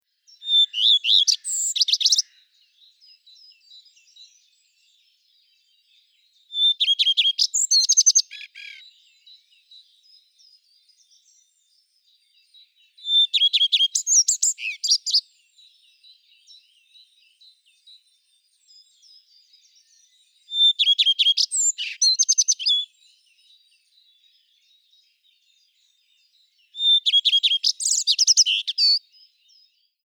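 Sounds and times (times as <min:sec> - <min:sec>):
Phoenicurus phoenicurus calling: 0:00.3 - 0:04.5, 0:06.5 - 0:09.9, 0:12.8 - 0:17.4, 0:18.7 - 0:23.6, 0:26.7 - 0:29.1.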